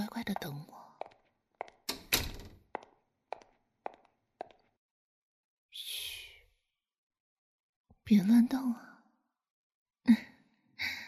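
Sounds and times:
speech: 0.2 - 0.8, 8.1 - 8.9, 10.1 - 10.3
door pulled shut with thuds and latch clicks: 1.9 - 2.6.

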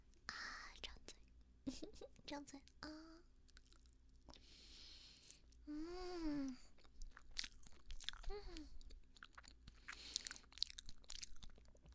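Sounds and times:
speech: 1.7 - 3.2, 5.7 - 6.7, 8.3 - 8.8
soft chewing of a durian mille-feuille crepe cake: 2.5 - 5.7, 6.5 - 11.9
person humming pleased vocal tones: 5.7 - 6.7, 8.2 - 8.8.

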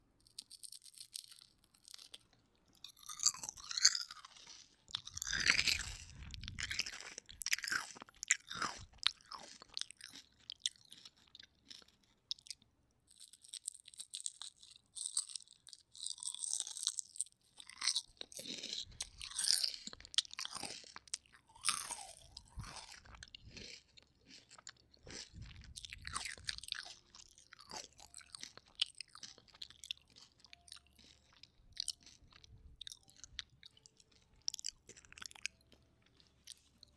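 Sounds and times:
crunchy chewing of crispy fried yellow croaker fish: 0.0 - 36.9.

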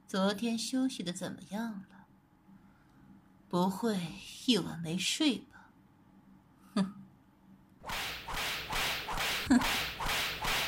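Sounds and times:
speech: 0.1 - 2.0, 3.5 - 5.6
whip lashing in a dark water prison: 7.8 - 10.6.

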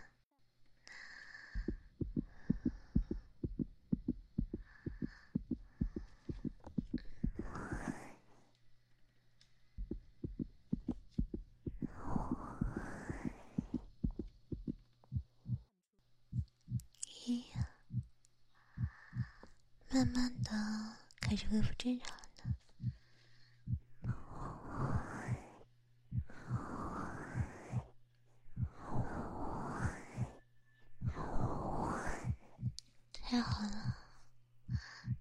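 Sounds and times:
soft breathy swells: 0.8 - 8.6, 11.6 - 14.6, 17.5 - 19.6, 22.4 - 32.8
heartbeat heard through a person's chest: 1.5 - 8.0, 9.7 - 15.7, 16.3 - 18.1, 18.7 - 23.0, 23.6 - 25.4, 26.1 - 27.9, 28.5 - 30.4, 31.0 - 34.1, 34.7 - 35.1
speech: 21.4 - 22.2.

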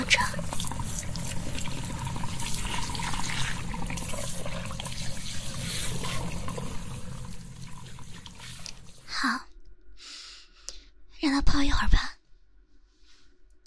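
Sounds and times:
tap running hot water into a hair-washing basin: 0.0 - 9.1
speech: 11.4 - 12.0.

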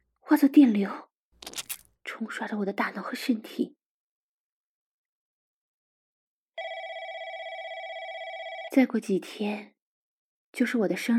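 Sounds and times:
speech: 0.3 - 1.1, 2.2 - 3.8, 8.7 - 9.7, 10.5 - 11.1
telephone ringing with trilling bell tone: 6.6 - 8.8.

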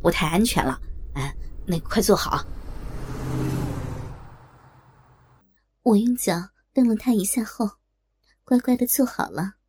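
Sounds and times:
speech: 0.0 - 2.6, 5.8 - 7.8, 8.5 - 9.6
car driving along with engine and road noise: 0.8 - 5.4.

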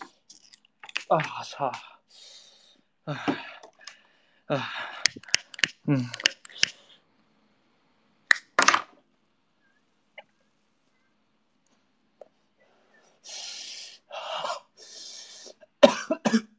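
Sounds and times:
speech: 1.1 - 1.9, 3.1 - 3.5, 4.5 - 4.9, 5.9 - 6.2
gasping breaths: 1.9 - 5.3, 12.6 - 15.8
person coughing harshly after smoking too fast: 15.8 - 16.5.

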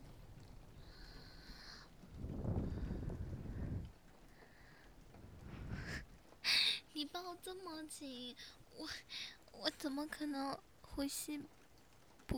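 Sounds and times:
wind gusting: 0.0 - 6.5
heavy rain: 0.0 - 12.3
speech: 7.2 - 11.6.

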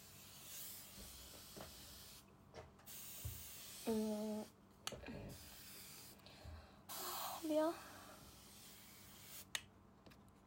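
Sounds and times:
moisturizing facial mist bottle spraying: 0.1 - 2.2, 2.8 - 4.5, 5.3 - 6.2, 6.9 - 9.6.

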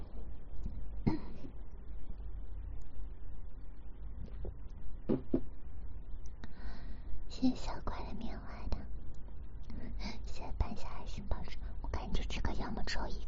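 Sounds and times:
low steady hum: 0.0 - 13.2
throat clearing: 1.1 - 1.4
speech: 7.4 - 8.2, 10.8 - 13.2.

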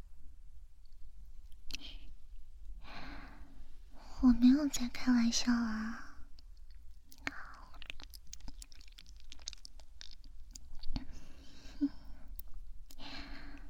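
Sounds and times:
breathing and sighs: 2.8 - 4.1, 11.0 - 13.6
speech: 4.2 - 6.0
person chewing and eating food: 6.4 - 13.6.

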